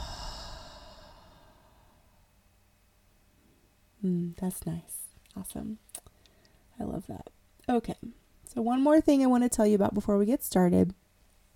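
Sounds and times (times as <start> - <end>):
deep breath exhaled: 0.0 - 2.2
speech: 4.0 - 6.0, 6.8 - 11.0.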